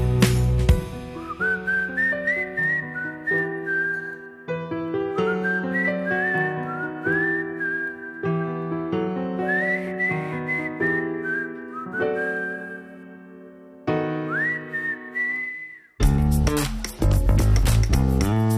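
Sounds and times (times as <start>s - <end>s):
steady instrumental backing music: 0.0s - 15.4s, 16.0s - 18.5s
person whistling a lilting tune: 1.1s - 4.5s, 5.2s - 8.4s, 9.3s - 13.2s, 14.2s - 16.6s.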